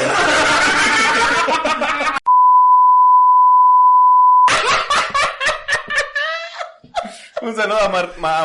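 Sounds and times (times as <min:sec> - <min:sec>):
several people laughing heartily: 0:00.0 - 0:02.2, 0:04.5 - 0:07.4
censorship bleep tone: 0:02.3 - 0:04.5
speech: 0:07.6 - 0:08.4.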